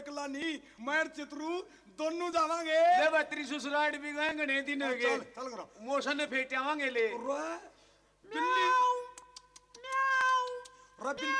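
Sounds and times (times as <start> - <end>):
speech: 0.2 - 7.7, 8.3 - 8.9, 11.0 - 11.3
cat meowing: 8.4 - 9.1, 9.8 - 11.3
small clicks: 9.1 - 10.8.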